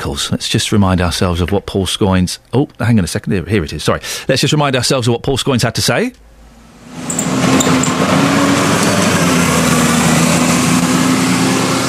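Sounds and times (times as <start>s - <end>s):
speech: 0.0s - 6.2s
broadband road noise: 6.4s - 11.8s
bus engine rumbling while driving past on a road: 7.0s - 11.8s.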